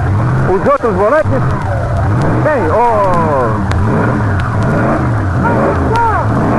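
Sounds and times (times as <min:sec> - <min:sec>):
powerful Alfa Romeo race car engine running before a 1947 race: 0:00.0 - 0:06.5
speech: 0:00.5 - 0:01.8, 0:02.4 - 0:04.2.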